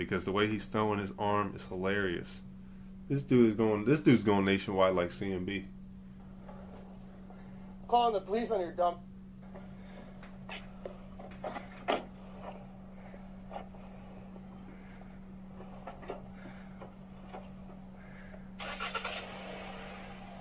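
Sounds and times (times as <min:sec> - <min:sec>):
speech: 0:00.0 - 0:02.5, 0:03.1 - 0:05.8, 0:07.9 - 0:09.1
car engine humming in a parking lot: 0:09.3 - 0:20.3
car engine revving as the vehicle starts moving off: 0:18.6 - 0:20.3.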